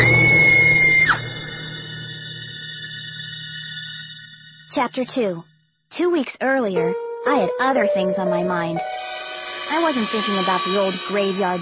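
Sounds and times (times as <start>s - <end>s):
high-pitched scream: 0.0s - 2.0s
speech: 4.8s - 9.0s, 9.7s - 11.6s.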